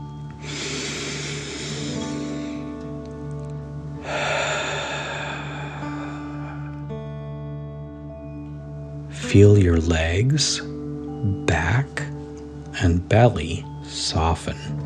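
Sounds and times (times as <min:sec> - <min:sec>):
soft sustained tones: 0:00.0 - 0:14.8
deep breaths in and out during a guided relaxation exercise: 0:00.3 - 0:02.8, 0:04.0 - 0:07.2
speech: 0:09.3 - 0:11.4, 0:12.8 - 0:14.8.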